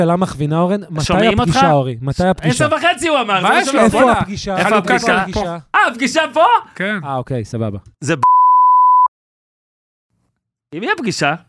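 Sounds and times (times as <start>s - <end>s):
speech: 0.0s - 8.4s, 10.7s - 11.4s
steady electronic censor beep tone: 8.2s - 9.1s.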